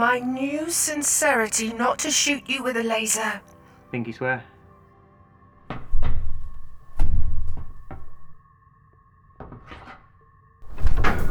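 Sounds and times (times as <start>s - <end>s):
speech: 0.0s - 4.5s
stuck cupboard door thudding and rattling as it is shoved from inside: 5.7s - 8.3s, 10.6s - 11.2s.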